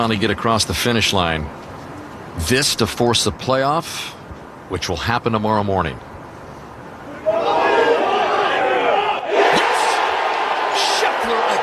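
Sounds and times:
speech: 0:00.0 - 0:01.7, 0:02.4 - 0:06.1
golf gallery cheering after a putt: 0:07.1 - 0:11.6
golf gallery applauding: 0:09.8 - 0:11.6.

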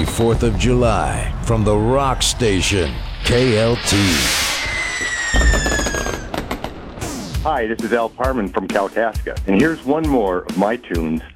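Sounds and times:
speech: 0:00.0 - 0:04.4, 0:05.4 - 0:05.9, 0:07.4 - 0:11.3
sharp loud firework bangs: 0:00.0 - 0:07.6
4th of July fireworks crackling pops: 0:02.1 - 0:08.0
firework whistling shriek: 0:02.6 - 0:07.4.

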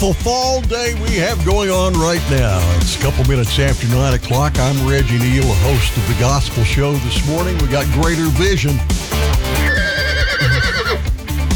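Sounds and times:
speech: 0:00.0 - 0:09.5
steady loud sound bed: 0:00.0 - 0:10.1
horse neighing: 0:09.4 - 0:11.2.

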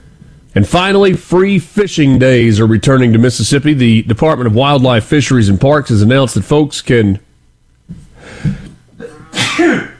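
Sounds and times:
speech: 0:00.6 - 0:07.3
person coughing, partly muted by cough button: 0:09.0 - 0:09.9.

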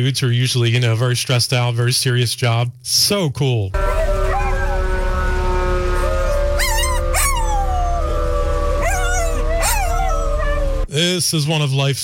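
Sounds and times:
speech: 0:00.0 - 0:03.9, 0:11.0 - 0:12.0
hound dog howling: 0:03.8 - 0:10.9
steady droning tone like a distant siren: 0:03.8 - 0:10.9.

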